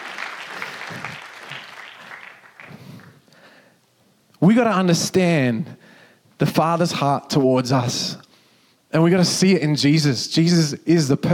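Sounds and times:
crowd applauding in a room: 0:00.0 - 0:03.2
speech: 0:04.4 - 0:05.8, 0:06.4 - 0:08.2, 0:08.9 - 0:11.3.

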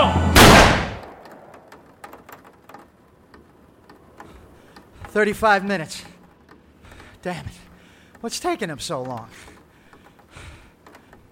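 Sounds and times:
gunshot: 0:00.3 - 0:01.1
speech: 0:05.2 - 0:06.1, 0:07.2 - 0:09.5.

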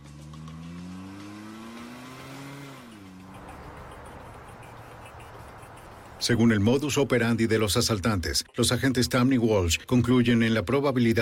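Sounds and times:
car engine revving as robbers accelerate away: 0:00.0 - 0:06.4
broad rushing roar: 0:01.0 - 0:06.4
speech: 0:06.2 - 0:11.2.

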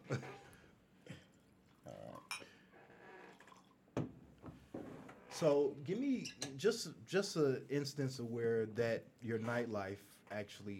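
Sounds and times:
speech: 0:00.1 - 0:00.3, 0:05.4 - 0:10.7
bourbon pouring into glasses: 0:01.4 - 0:02.6, 0:03.2 - 0:03.9
glasses clinking: 0:02.2 - 0:02.5.

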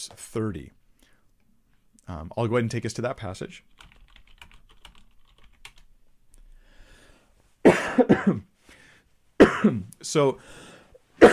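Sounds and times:
speech: 0:00.0 - 0:00.8, 0:02.1 - 0:03.9, 0:08.0 - 0:08.5, 0:09.6 - 0:11.3
harsh coughs: 0:07.6 - 0:08.5, 0:09.4 - 0:09.9, 0:11.2 - 0:11.3.

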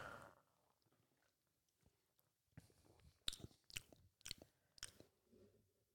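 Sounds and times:
man's wet mouth smacking while clearing his palate during a drink tasting: 0:03.3 - 0:05.1.

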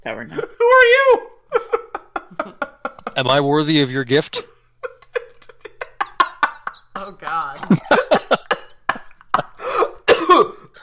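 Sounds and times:
speech: 0:00.0 - 0:01.3, 0:03.2 - 0:04.5
laughter: 0:01.5 - 0:03.2, 0:04.4 - 0:10.0
person coughing: 0:07.7 - 0:10.8.

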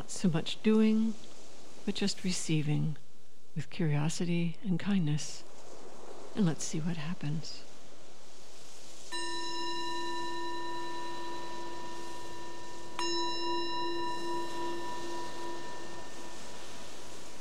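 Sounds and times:
speech: 0:00.1 - 0:03.0, 0:03.6 - 0:05.5, 0:06.4 - 0:07.7
meditation bell ringing: 0:09.1 - 0:17.3.

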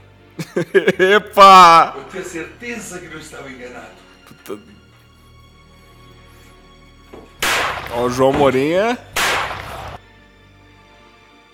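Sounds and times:
laughter: 0:00.4 - 0:02.5
speech: 0:00.6 - 0:04.8, 0:07.9 - 0:09.1
gunshot: 0:07.4 - 0:07.9, 0:09.2 - 0:10.0.

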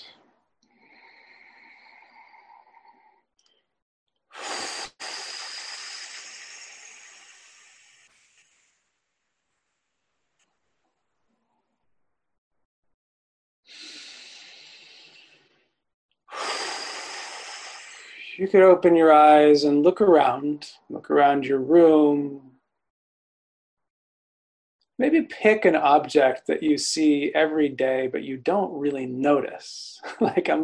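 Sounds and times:
slow deep breathing during a relaxation exercise: 0:00.0 - 0:03.7, 0:04.4 - 0:10.2, 0:13.7 - 0:18.4
speech: 0:18.4 - 0:22.5, 0:25.0 - 0:30.6.

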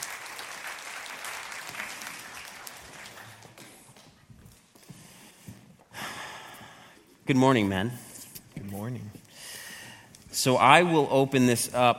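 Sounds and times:
room full of people applauding: 0:00.0 - 0:04.1
speech: 0:07.3 - 0:08.1, 0:08.8 - 0:09.2, 0:10.4 - 0:11.9.

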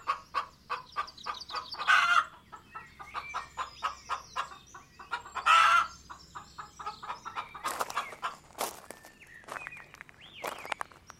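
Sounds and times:
hens squawking: 0:00.0 - 0:05.9, 0:06.8 - 0:08.9
several hens clucking: 0:00.0 - 0:08.9.

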